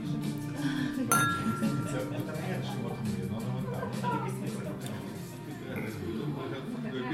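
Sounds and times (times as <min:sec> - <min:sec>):
music in a restaurant: 0:00.0 - 0:06.9
wine glasses clinking in a toast in a restaurant: 0:01.1 - 0:02.4.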